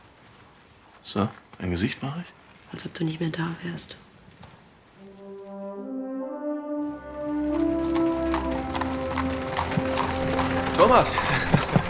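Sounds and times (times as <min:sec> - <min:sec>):
speech: 0:01.0 - 0:04.0, 0:10.8 - 0:11.5
sustained tones: 0:05.0 - 0:11.8
carriage horse hooves clip-clopping at earliest dawn: 0:07.0 - 0:11.8
horse-drawn carriage rolling rumble: 0:07.0 - 0:11.8.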